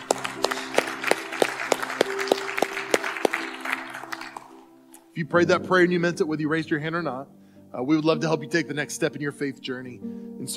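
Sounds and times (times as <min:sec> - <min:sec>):
sharp evenly spaced claps: 0:00.0 - 0:04.6
audience applauding after a prayer: 0:00.0 - 0:04.8
sustained keyboard chords: 0:00.0 - 0:10.5
speech: 0:05.2 - 0:10.5.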